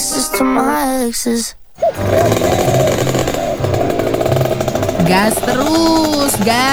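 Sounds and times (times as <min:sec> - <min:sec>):
speech: 0:00.4 - 0:03.2, 0:05.1 - 0:06.7
old rare motor vehicle engine revving roughly: 0:01.8 - 0:06.7.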